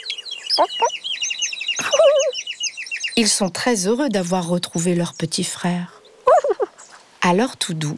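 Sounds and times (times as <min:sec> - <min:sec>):
chorus of high thin chick peeps: 0:00.5 - 0:00.9, 0:01.8 - 0:02.4
hen clucking: 0:00.5 - 0:00.9, 0:01.9 - 0:02.3, 0:06.3 - 0:06.8
speech: 0:00.6 - 0:01.0, 0:03.2 - 0:06.0, 0:07.2 - 0:07.9.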